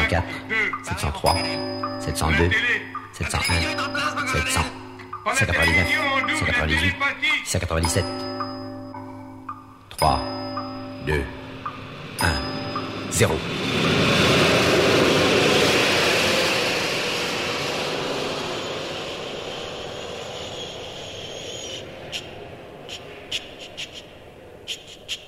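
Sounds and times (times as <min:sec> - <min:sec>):
speech: 0:00.1 - 0:08.5, 0:10.0 - 0:10.4, 0:11.1 - 0:11.4, 0:12.2 - 0:12.5, 0:13.1 - 0:14.4
loud steady rocket engine roar: 0:11.1 - 0:24.7.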